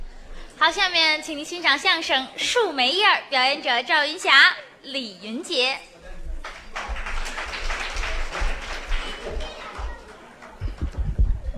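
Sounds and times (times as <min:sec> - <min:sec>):
speech: 0:00.6 - 0:05.9
crowd applauding: 0:06.3 - 0:11.4.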